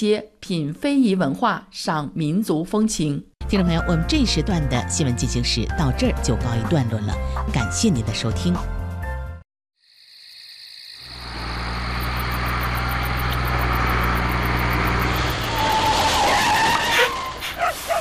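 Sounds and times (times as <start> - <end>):
speech: 0.0 - 8.8
heavy truck engine roaring on a patrol road above a buried pipeline: 11.1 - 17.9
heavy truck tires squealing and skidding: 11.2 - 17.9.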